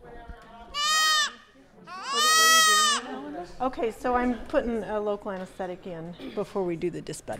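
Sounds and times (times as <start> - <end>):
baby goats bleating: 0.8 - 3.1
speech: 3.6 - 7.3.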